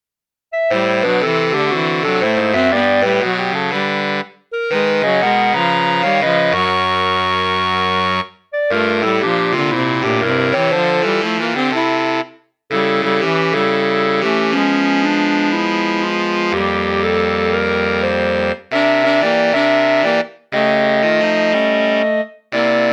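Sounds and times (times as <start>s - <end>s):
saxophone quartet playing: 0.6s - 22.9s.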